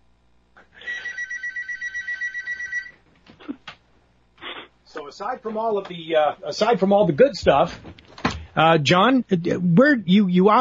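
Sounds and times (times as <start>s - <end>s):
telephone for listener calls ringing with an electronic bell: 0.8s - 3.0s
speech: 5.1s - 8.0s, 8.6s - 10.5s
clicks and thumps: 7.4s - 8.6s.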